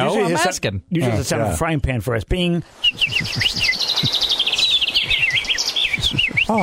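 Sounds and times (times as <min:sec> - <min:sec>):
speech: 0:00.0 - 0:04.2
person whistling imitating a bird call: 0:02.8 - 0:06.6.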